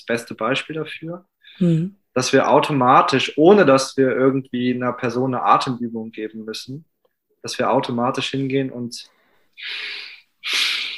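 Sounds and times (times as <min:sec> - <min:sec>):
speech: 0:00.0 - 0:10.7
deep breath drawn in through the nose: 0:09.1 - 0:10.9.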